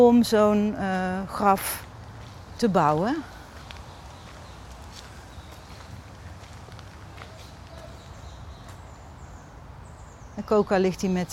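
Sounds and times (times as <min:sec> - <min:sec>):
speech: 0:00.0 - 0:01.9, 0:02.6 - 0:03.4, 0:10.4 - 0:11.3
faint birdsong in a cemetery: 0:00.0 - 0:11.3
low outdoor hum in a cemetery: 0:00.0 - 0:11.3
footsteps walking along a cemetery path around a roundabout: 0:01.6 - 0:09.0.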